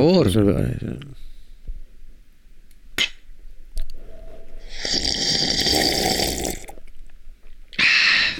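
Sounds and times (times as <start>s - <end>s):
speech: 0.0s - 1.3s
loud slurp of a drink through the lips: 4.7s - 6.8s.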